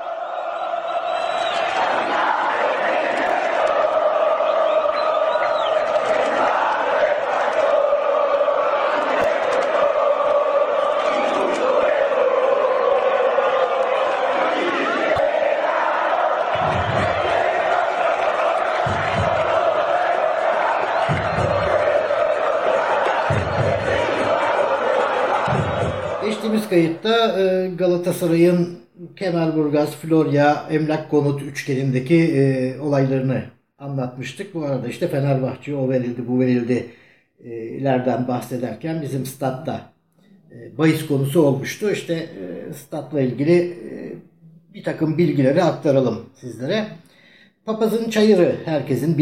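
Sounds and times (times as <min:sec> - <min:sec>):
large stadium crowd of football supporters chanting in unison: 0:00.0 - 0:27.0
deep drum-like thumps: 0:16.5 - 0:17.6, 0:18.6 - 0:19.9, 0:20.8 - 0:22.5, 0:23.1 - 0:24.6, 0:25.4 - 0:26.2
speech: 0:27.0 - 0:37.0, 0:37.8 - 0:39.9, 0:40.8 - 0:43.9, 0:44.8 - 0:49.1.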